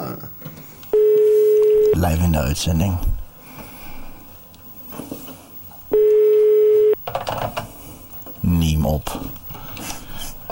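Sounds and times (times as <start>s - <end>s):
faint noise: 0.0s - 10.5s
ringback tone from an outgoing phone call on air: 1.0s - 2.0s, 5.9s - 7.0s
speech: 2.0s - 3.1s, 8.9s - 9.4s.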